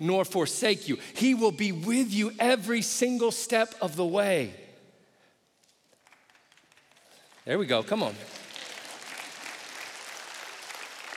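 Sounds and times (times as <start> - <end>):
speech: 0.0 - 4.6, 7.5 - 8.4
large congregation applauding: 5.8 - 11.1.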